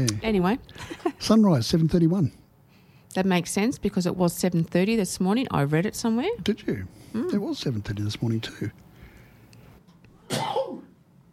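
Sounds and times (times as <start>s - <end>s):
speech: 0.0s - 2.4s, 3.1s - 8.9s
single forceful sneeze: 10.2s - 11.0s.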